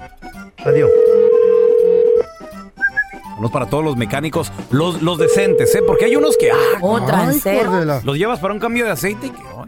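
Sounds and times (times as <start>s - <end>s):
speech: 0.1s - 1.1s, 3.4s - 9.5s
phone line ringing tone on an outgoing call to a mechanic's repair shop: 0.7s - 2.3s, 5.2s - 6.8s.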